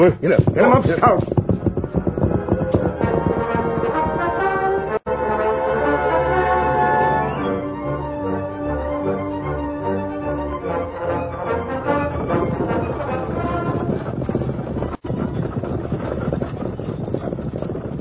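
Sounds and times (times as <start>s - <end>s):
speech: 0.0s - 1.4s
horses' hooves clip-clopping as riders set off: 0.0s - 5.0s, 12.1s - 18.0s
sustained musical tones: 1.8s - 13.9s.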